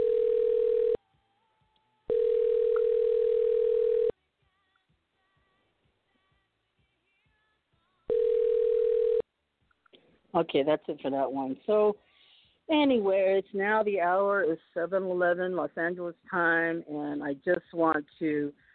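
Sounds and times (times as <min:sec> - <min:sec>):
telephone ringback tone of an outgoing call: 0:00.0 - 0:01.0, 0:02.1 - 0:04.1, 0:08.1 - 0:09.2
speech: 0:10.4 - 0:12.1, 0:12.7 - 0:18.6.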